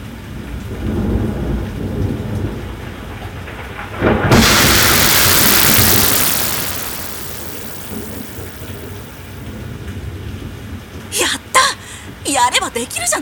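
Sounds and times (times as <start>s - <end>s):
steady rain: 0.0s - 13.2s
speech: 0.7s - 1.0s, 12.5s - 13.2s
intense hissing downpour: 0.7s - 9.5s
deep rolling thunder: 0.9s - 9.4s
loud thunder crack: 3.9s - 9.4s.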